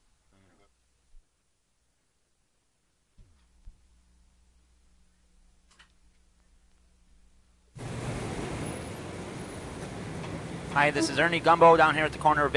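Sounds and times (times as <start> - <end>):
low hum at a city street corner: 3.5 - 11.5
loud rushing roar of passing city traffic: 7.8 - 12.5
steady engine drone: 7.8 - 12.5
speech: 10.8 - 12.5.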